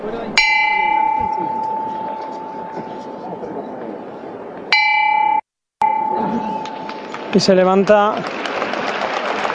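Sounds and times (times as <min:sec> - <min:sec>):
noisy murmuring crowd: 0:00.0 - 0:04.7, 0:06.1 - 0:09.5
bright metallic bell struck signalling a float lift: 0:00.4 - 0:03.2, 0:04.7 - 0:07.1
speech: 0:07.4 - 0:08.4.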